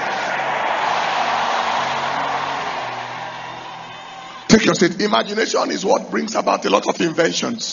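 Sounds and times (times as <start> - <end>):
audience shouting amen together: 0.0 - 5.6
speech: 4.5 - 7.7.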